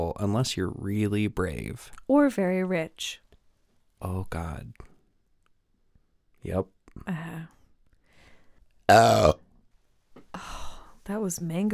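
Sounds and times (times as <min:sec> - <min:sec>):
speech: 0:00.2 - 0:03.2, 0:04.0 - 0:04.9, 0:06.4 - 0:07.6, 0:08.9 - 0:09.4, 0:10.3 - 0:11.7
loud throaty burp: 0:08.9 - 0:09.5.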